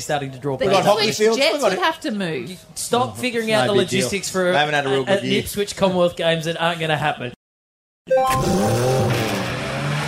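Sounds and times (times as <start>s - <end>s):
speech: 0.0s - 7.4s, 8.1s - 9.0s
race car engines revving: 8.4s - 10.0s.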